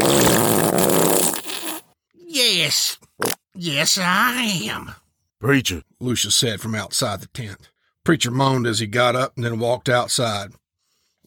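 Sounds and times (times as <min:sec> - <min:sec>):
long loud rumbling fart: 0:00.0 - 0:01.9
speech: 0:03.2 - 0:10.6.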